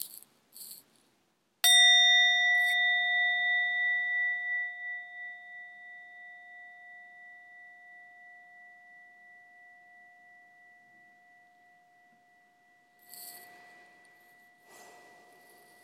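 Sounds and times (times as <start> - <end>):
soft brushing sounds: 0.0 - 1.1, 13.0 - 15.8
meditation bell ringing: 1.6 - 15.8.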